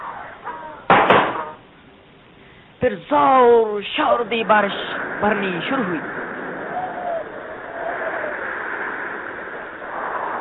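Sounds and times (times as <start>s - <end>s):
low noise: 0.0s - 10.3s
door on a boat slamming shut: 0.9s - 1.6s
speech: 2.8s - 6.2s.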